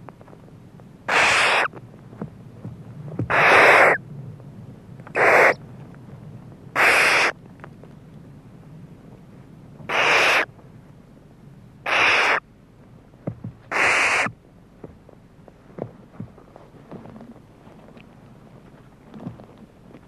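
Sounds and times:
low background hum: 0.0 - 20.0
barn owl shrieking: 1.1 - 1.7, 3.3 - 4.0, 5.1 - 5.6, 6.8 - 7.4, 9.9 - 10.5, 11.8 - 12.4, 13.7 - 14.4.

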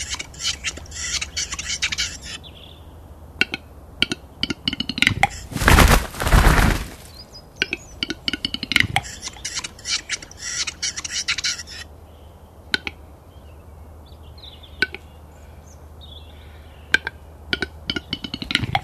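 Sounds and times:
Western capercaillie chattering: 0.0 - 2.8, 3.4 - 11.9, 16.4 - 18.8.

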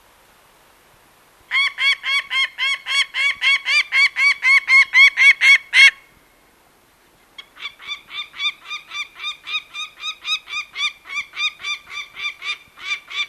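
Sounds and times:
peregrine falcon uttering harsh nasal kak notes: 1.5 - 6.1, 7.4 - 13.2.

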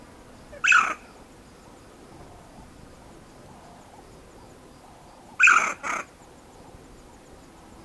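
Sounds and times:
banded mongoose chirping: 0.5 - 1.1, 5.4 - 6.1.

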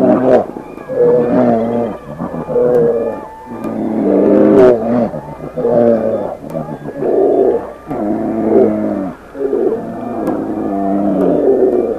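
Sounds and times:
brown bear groaning and bawling: 0.0 - 11.9.

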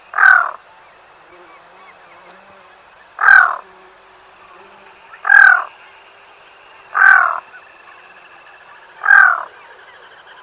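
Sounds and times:
black-throated loon croaking: 0.1 - 0.6, 3.2 - 3.7, 6.9 - 7.4, 9.0 - 9.6.

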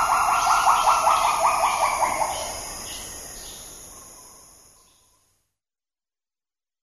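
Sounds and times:
agile gibbon quavering hoots: 0.0 - 2.5.

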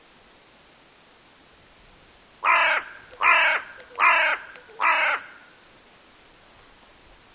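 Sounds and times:
Hooded crow uttering raspy nasal caws: 2.4 - 5.6.

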